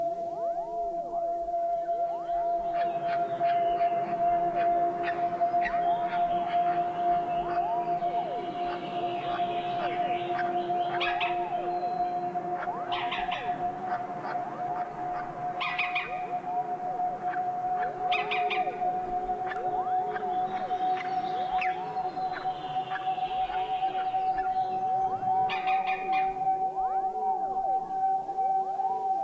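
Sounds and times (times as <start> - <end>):
steady droning hum at a green woodpecker nest: 0.0 - 28.3
green woodpeckers wavering squeaky calls and chirpy bursts at the nest: 2.7 - 16.4, 19.5 - 26.4.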